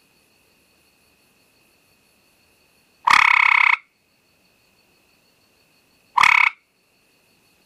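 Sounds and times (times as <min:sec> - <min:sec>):
faint steady high hum: 0:00.0 - 0:03.2, 0:03.8 - 0:07.6
gray treefrog Hyla versicolor harsh pulsed trills: 0:02.9 - 0:04.2, 0:05.6 - 0:07.0.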